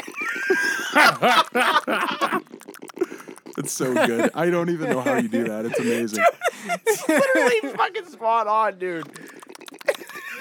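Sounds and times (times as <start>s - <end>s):
laughter: 0.0s - 2.4s, 3.6s - 8.2s
speech: 1.0s - 2.4s, 3.7s - 9.2s
person vocally imitating guinea pig wheeking chirps: 1.8s - 4.4s, 9.0s - 10.4s.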